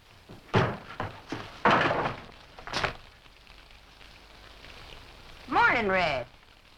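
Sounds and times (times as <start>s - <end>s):
sharp wooden thumps and clatters: 0.3s - 3.0s
door on a stage set flying open: 0.4s - 3.0s
speech: 5.8s - 6.4s.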